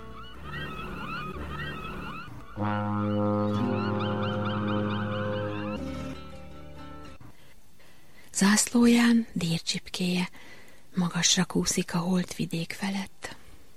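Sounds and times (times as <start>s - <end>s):
birds chirping and calling: 0.0s - 6.5s
large ship's horn blast: 2.5s - 6.1s
speech: 2.6s - 3.7s, 8.4s - 13.2s.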